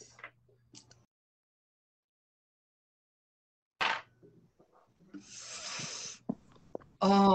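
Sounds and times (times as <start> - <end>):
two six-sided dice rattling and tumbling across a table: 3.8 - 4.1.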